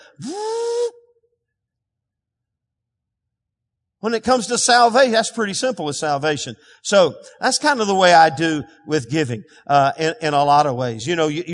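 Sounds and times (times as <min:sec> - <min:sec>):
speech: 0:00.2 - 0:00.4, 0:04.0 - 0:11.5
voice imitating a blender whirring: 0:00.2 - 0:00.9.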